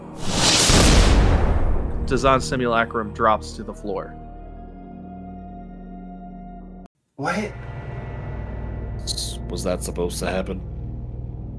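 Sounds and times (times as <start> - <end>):
small explosion: 0.2 - 2.5
speech: 2.1 - 4.2, 7.2 - 7.7, 9.5 - 10.7.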